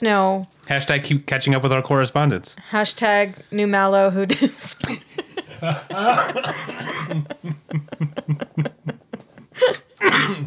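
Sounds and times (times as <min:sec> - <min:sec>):
speech: 0:00.0 - 0:08.7
laughter: 0:04.3 - 0:10.0
person coughing fit: 0:05.7 - 0:07.3, 0:09.6 - 0:10.4.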